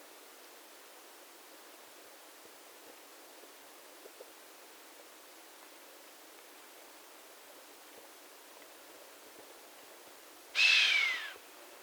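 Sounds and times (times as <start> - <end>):
chamois uttering a breathy hissing whistle: 10.6 - 11.4.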